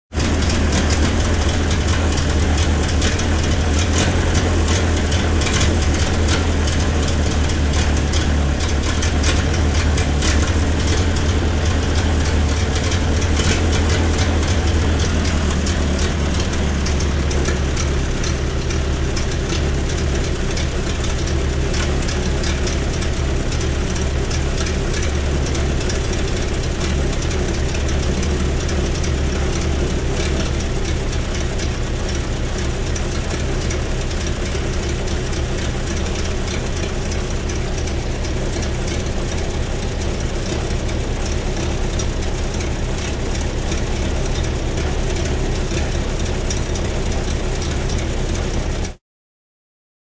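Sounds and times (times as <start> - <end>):
1931 Model T idling: 0.1 - 49.0.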